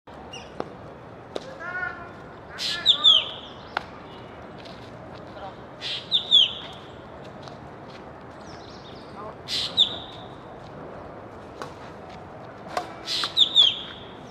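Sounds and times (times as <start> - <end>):
ashy drongo: 1.6 - 3.8, 5.8 - 6.9, 9.1 - 10.4, 13.0 - 14.2.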